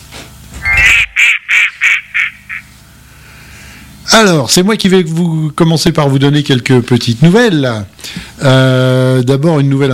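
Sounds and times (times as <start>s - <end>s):
duck quacking: 0.6s - 2.7s
speech: 4.1s - 9.9s.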